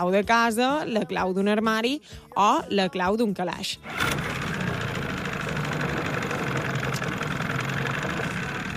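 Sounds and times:
speech: 0.0 - 4.3
car engine started with an ignition key: 3.8 - 8.4.

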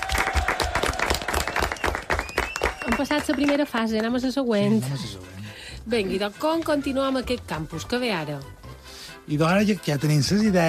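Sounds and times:
loud crowd applause: 0.0 - 3.8
speech: 2.9 - 8.6, 9.3 - 10.6.

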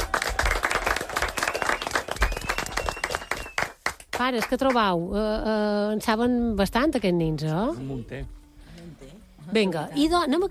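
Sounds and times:
small group applauding: 0.0 - 4.8
speech: 4.2 - 8.4, 9.5 - 10.4.

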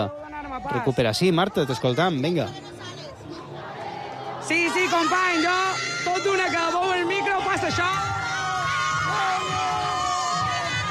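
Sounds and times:
speech: 0.0 - 2.9, 4.5 - 8.2
crowd cheering and shouting in celebration: 0.0 - 10.8
high whoops and yells: 4.8 - 10.8.

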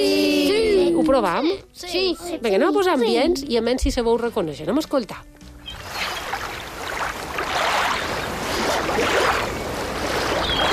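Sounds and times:
speech: 1.0 - 5.4
waves washing onto a beach: 5.9 - 10.7.

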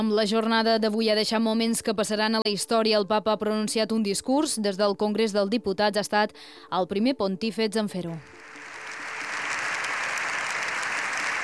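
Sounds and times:
speech: 0.0 - 8.5
sustained applause from a large crowd in a big hall: 8.2 - 11.4.

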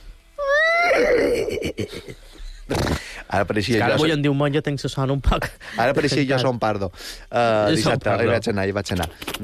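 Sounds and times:
person imitating a horse neighing: 0.4 - 1.9
speech: 1.5 - 9.4.

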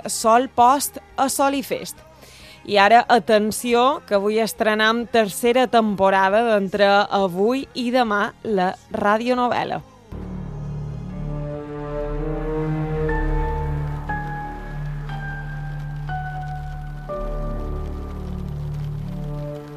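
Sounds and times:
speech: 0.0 - 9.9
low drone: 10.1 - 19.7
sustained musical tones shifting pitch: 10.2 - 19.7
heavy rain on rooftops of an old town: 11.1 - 19.7.

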